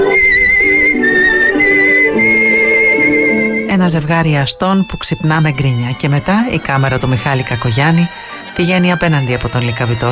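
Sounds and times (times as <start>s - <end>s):
man whistling a tune: 0.0s - 4.9s
steady instrumental music: 0.0s - 10.0s
speech: 3.8s - 10.0s.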